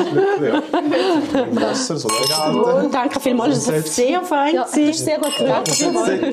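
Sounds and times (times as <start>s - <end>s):
people chattering and chuckling: 0.0s - 6.3s
speech: 0.0s - 6.3s
wine glasses clinking: 2.1s - 3.7s, 5.1s - 6.3s.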